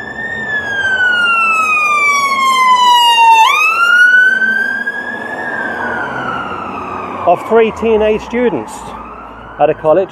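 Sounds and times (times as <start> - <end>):
ambulance siren wailing as the vehicle passes by: 0.0 - 10.1
low rumble of road traffic: 0.0 - 10.1
speech: 7.3 - 9.0, 9.6 - 10.1.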